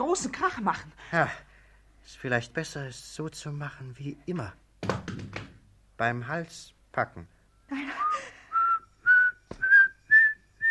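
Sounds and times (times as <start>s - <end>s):
speech: 0.0s - 5.4s, 6.0s - 8.0s
person whistling short clear notes: 7.9s - 10.6s.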